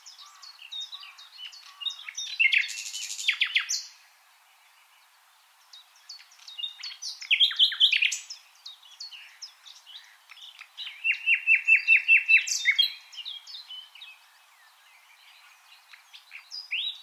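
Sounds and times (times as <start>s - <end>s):
common nightingale Luscinia megarhynchos singing: 0.0s - 17.0s.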